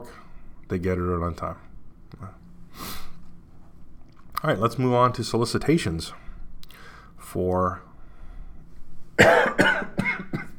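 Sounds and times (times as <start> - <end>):
speech: 0.0 - 2.4, 4.4 - 6.2, 7.3 - 7.9, 9.2 - 9.6
person coughing harshly: 9.2 - 10.5.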